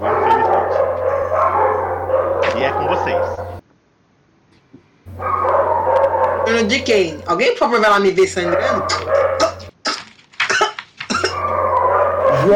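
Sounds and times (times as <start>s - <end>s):
neighborhood dog barking: 0.0s - 3.6s, 5.1s - 7.3s, 8.2s - 9.8s, 11.2s - 12.5s
steady low hum: 0.0s - 7.5s
speech: 6.5s - 9.2s.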